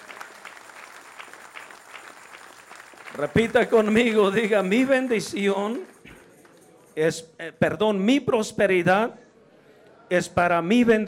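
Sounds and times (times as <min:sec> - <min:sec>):
church audience applauding in praise: 0:00.0 - 0:06.7
speech: 0:03.2 - 0:05.9, 0:07.0 - 0:09.2, 0:10.1 - 0:11.0.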